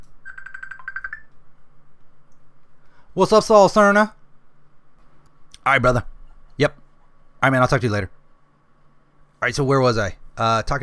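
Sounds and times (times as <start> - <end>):
quiet hum: 0.0 - 10.8
phone ringtone for an incoming call beeping: 0.2 - 1.3
speech: 3.2 - 4.2, 5.6 - 6.8, 7.4 - 8.2, 9.4 - 10.8.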